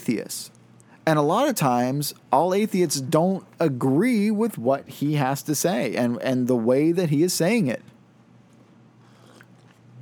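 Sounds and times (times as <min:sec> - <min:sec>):
speech: 0:00.1 - 0:07.9
slurping coffee: 0:09.0 - 0:09.9.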